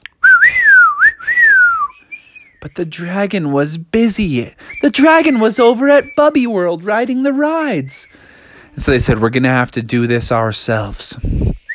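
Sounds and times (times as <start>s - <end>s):
person whistling a wavering sliding tune to call someone: 0.1s - 2.6s, 4.6s - 6.2s, 11.4s - 11.7s
speech: 2.6s - 8.2s, 8.8s - 11.4s.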